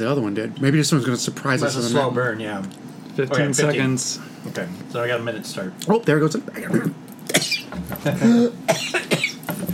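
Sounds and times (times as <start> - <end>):
speech: 0.0 - 7.0, 7.7 - 8.9
person coughing after inhaling powder: 6.8 - 9.5.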